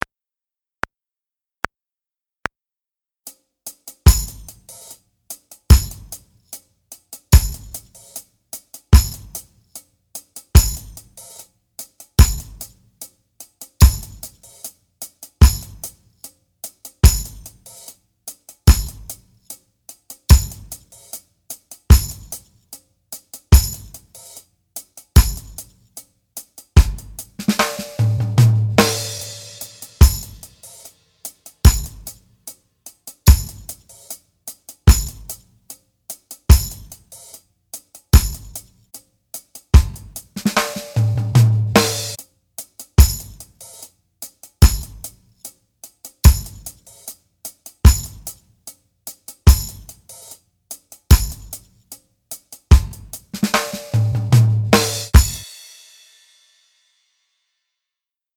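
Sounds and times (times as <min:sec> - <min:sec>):
drum kit beat: 0:04.0 - 0:04.9, 0:05.7 - 0:06.3, 0:07.3 - 0:08.2, 0:08.9 - 0:09.5, 0:10.5 - 0:11.3, 0:12.2 - 0:12.8, 0:13.8 - 0:14.6, 0:15.4 - 0:16.0, 0:17.0 - 0:17.8, 0:18.6 - 0:19.3, 0:20.3 - 0:21.0, 0:21.9 - 0:22.4, 0:23.5 - 0:24.2, 0:25.2 - 0:25.7, 0:26.8 - 0:30.9, 0:31.6 - 0:32.2, 0:33.2 - 0:34.2, 0:34.8 - 0:35.4, 0:36.5 - 0:37.2, 0:38.1 - 0:38.8, 0:39.7 - 0:42.2, 0:43.0 - 0:43.8, 0:44.6 - 0:45.2, 0:46.2 - 0:47.0, 0:47.8 - 0:48.4, 0:49.4 - 0:50.1, 0:51.1 - 0:51.7, 0:52.7 - 0:56.2.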